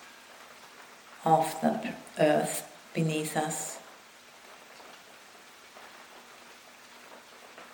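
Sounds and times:
steady rain falling outside on surfaces: 0.0s - 7.7s
speech: 1.2s - 3.8s.

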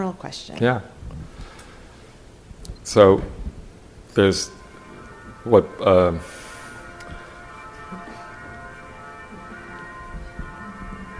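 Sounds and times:
speech: 0.0s - 1.0s, 2.8s - 3.4s, 4.2s - 4.6s, 5.4s - 6.3s
bells ringing: 4.1s - 11.1s.

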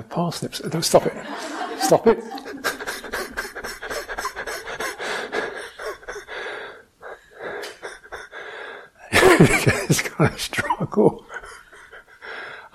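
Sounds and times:
speech: 0.0s - 2.7s, 9.4s - 11.2s
laughter: 0.8s - 6.5s, 9.1s - 12.3s
heavy wheezy breathing: 2.3s - 9.2s, 11.3s - 12.7s.

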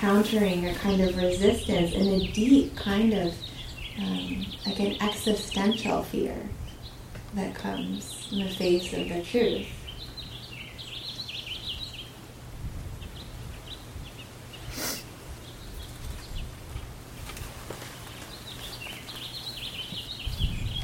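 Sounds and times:
speech: 0.0s - 6.6s, 7.3s - 9.8s
birds chirping and twittering outdoors: 0.0s - 20.8s
sharp rustle: 15.8s - 20.7s.

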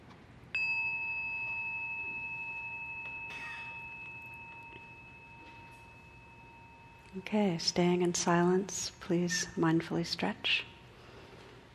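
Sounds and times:
meditation bell struck: 0.5s - 8.7s
speech: 7.1s - 10.7s.

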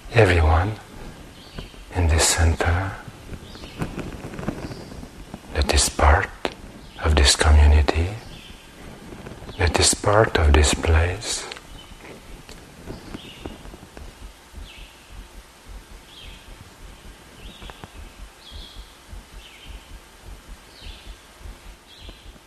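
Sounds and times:
morning birdsong outdoors: 0.0s - 22.4s
speech: 0.2s - 0.9s, 2.3s - 3.1s, 7.2s - 8.2s, 9.7s - 11.5s
rustling: 3.2s - 5.4s, 11.6s - 22.4s
soft footstep-like thuds: 12.1s - 22.4s.

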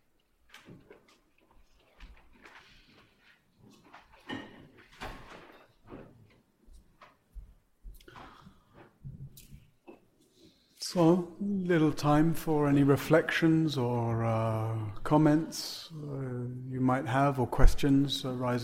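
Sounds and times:
chairs and cushions being shuffled back into place: 0.6s - 9.8s
speech: 10.9s - 18.6s.

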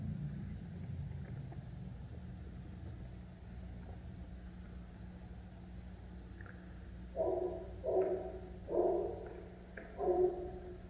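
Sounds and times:
low hum: 0.0s - 10.8s
dog barking: 7.2s - 9.4s, 10.0s - 10.6s.

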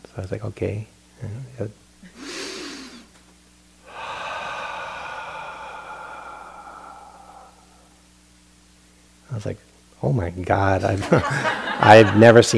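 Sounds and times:
speech: 0.2s - 1.8s, 9.4s - 12.5s
person breathing for meditation: 2.0s - 3.1s, 3.8s - 8.3s
laughter: 11.0s - 12.5s.

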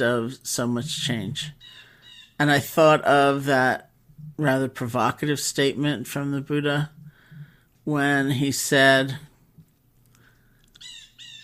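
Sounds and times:
speech: 0.0s - 1.8s, 2.4s - 7.0s, 7.9s - 9.3s
low hum: 0.0s - 11.4s
birds chirping outdoors: 1.4s - 2.6s, 10.2s - 11.4s.

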